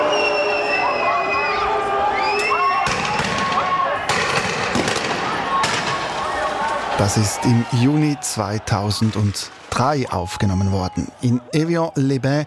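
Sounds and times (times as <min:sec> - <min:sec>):
riot crowd roaring and shouting in city streets after a demonstration: 0:00.0 - 0:12.4
sharp broadband bangs during a street riot: 0:02.8 - 0:06.9
speech: 0:07.0 - 0:12.4.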